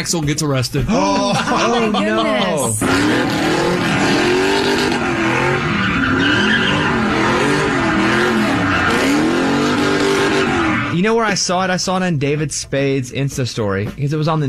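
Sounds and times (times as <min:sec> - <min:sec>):
speech: 0:00.0 - 0:04.2, 0:11.0 - 0:14.4
laughter: 0:00.8 - 0:02.9
car tires screeching while spinning donuts: 0:02.3 - 0:11.4
roaring, revving car engine: 0:02.5 - 0:11.2.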